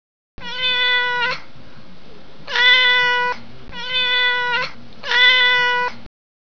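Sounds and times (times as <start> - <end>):
cat meowing: 0.4 - 1.4, 2.5 - 6.0.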